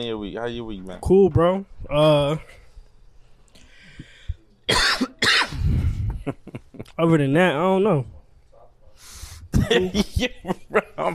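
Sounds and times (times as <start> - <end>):
speech: 0.0 - 2.6, 7.0 - 8.2, 9.7 - 11.1
smoker's cough: 4.7 - 6.0, 9.5 - 10.0
laughter: 6.0 - 7.0, 9.5 - 11.1.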